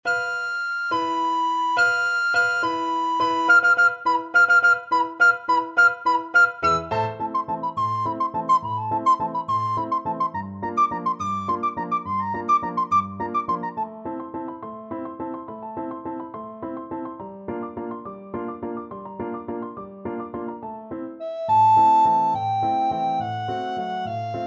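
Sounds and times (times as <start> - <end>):
recorder playing classical piece: 0.0 - 13.9, 21.2 - 24.4.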